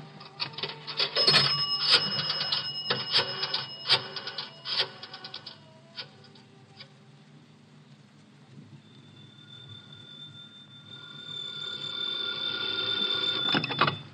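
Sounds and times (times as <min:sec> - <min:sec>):
steady telephone ringing tone on the line: 0:00.7 - 0:06.1, 0:09.3 - 0:14.0.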